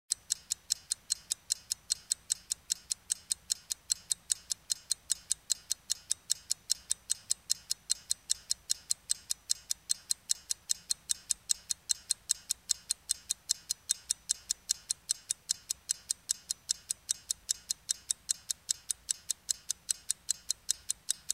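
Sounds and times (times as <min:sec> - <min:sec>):
mechanical wristwatch ticking: 0:00.1 - 0:21.3.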